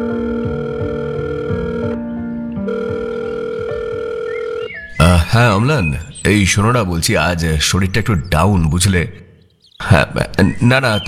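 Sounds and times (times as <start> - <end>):
telephone giving steady electronic tones while placing a call to an office: 0.0 - 2.0, 2.7 - 4.8
speech: 5.0 - 9.3, 9.9 - 11.0.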